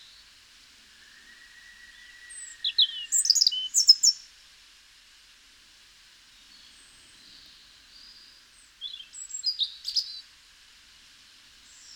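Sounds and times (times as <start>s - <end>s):
European robin Erithacus rubecula singing twittering phrases: 1.8s - 4.2s, 6.5s - 10.2s.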